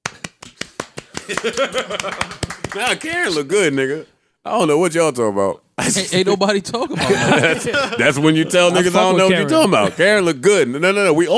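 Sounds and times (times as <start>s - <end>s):
sharp crisp claps and applause: 0.0s - 3.4s
laughter: 0.9s - 3.5s, 6.8s - 10.2s
speech: 1.3s - 11.3s.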